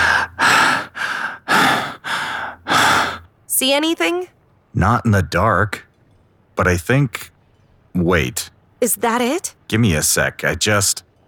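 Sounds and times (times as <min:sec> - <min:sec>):
heavy breathing in an earpiece: 0:00.0 - 0:03.3
speech: 0:03.6 - 0:05.9, 0:06.6 - 0:07.3, 0:07.9 - 0:11.1.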